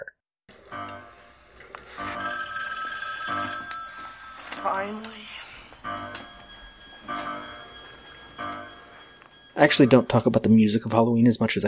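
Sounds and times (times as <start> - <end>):
telephone being dialed with bright electronic tones: 2.1 - 5.5
speech: 4.6 - 5.4, 9.6 - 11.6.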